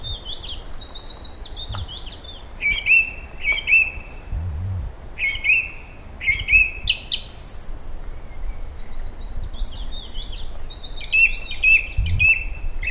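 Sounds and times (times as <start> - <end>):
Eurasian blackbird song with mellow fluted phrases: 0.0 - 12.8
faint low thuds: 1.6 - 2.2, 4.3 - 5.0, 12.0 - 12.4.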